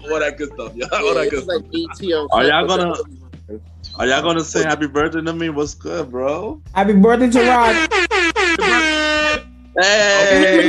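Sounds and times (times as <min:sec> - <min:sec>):
laughter: 0:00.0 - 0:03.0, 0:04.0 - 0:06.5, 0:08.6 - 0:08.9, 0:09.8 - 0:10.6
speech: 0:00.0 - 0:09.0, 0:09.8 - 0:10.6
air horn blasts: 0:07.4 - 0:10.5.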